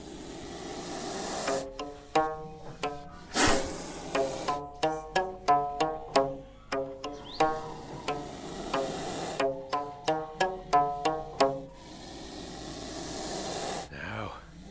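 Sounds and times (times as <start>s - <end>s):
bullnose snake hissing: 0.0s - 1.8s, 3.1s - 4.8s, 7.5s - 9.4s, 11.6s - 13.9s
ukulele strummed in quick steady chords: 1.5s - 11.8s.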